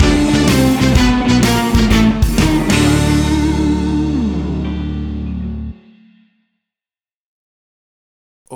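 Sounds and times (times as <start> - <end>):
blues stinger: 0.0 - 6.2.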